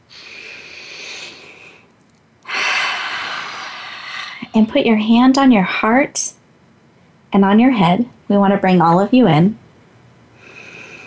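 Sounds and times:
deep breath: 0.0 - 1.9, 2.5 - 4.5, 10.4 - 11.0
speech: 4.5 - 6.4, 7.3 - 9.6.

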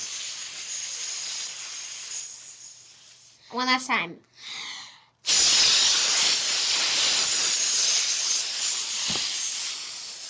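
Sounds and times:
person hissing air out during a breathing exercise: 0.0 - 3.4, 5.2 - 10.2
speech: 3.5 - 4.7.

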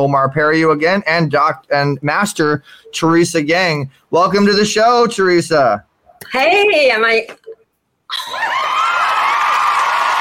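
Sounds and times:
speech: 0.0 - 7.4
studio audience cheering and screaming: 8.1 - 10.2.

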